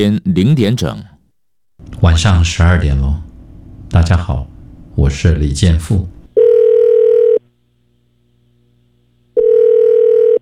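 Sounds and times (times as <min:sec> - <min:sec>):
speech: 0:00.0 - 0:01.1, 0:02.0 - 0:03.2, 0:03.9 - 0:06.2
telephone ringback tone before voicemail: 0:06.4 - 0:07.4, 0:09.4 - 0:10.3.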